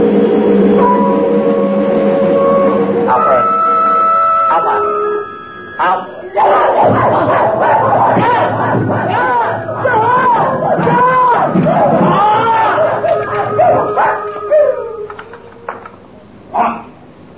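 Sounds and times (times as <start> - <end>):
hubbub: 0.0 - 17.0
several dogs barking and howling: 6.3 - 15.7.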